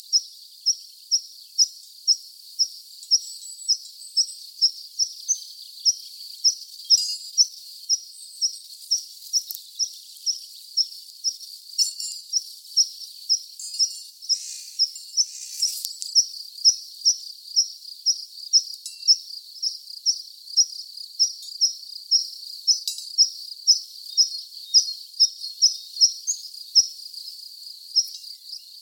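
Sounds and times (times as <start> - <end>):
tree pipit singing in Kranzegg: 0.0 - 28.8.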